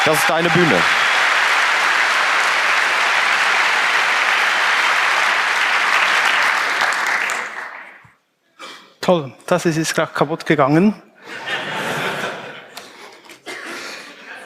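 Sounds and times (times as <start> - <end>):
speech: 0.0 - 1.0, 9.1 - 11.5
room full of people clapping: 0.0 - 8.1
laughter: 11.2 - 14.4.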